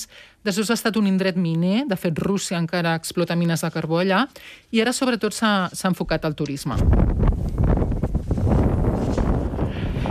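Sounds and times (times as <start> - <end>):
speech: 0.0 - 7.6
strong wind blowing across Spitsbergen Svalbard an Arctic island: 6.8 - 10.1.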